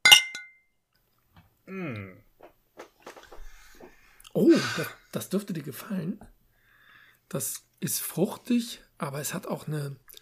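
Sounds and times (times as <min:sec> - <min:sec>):
glasses clinking together in a toast: 0:00.0 - 0:00.6
speech: 0:01.7 - 0:02.2, 0:04.4 - 0:06.4, 0:07.3 - 0:10.1.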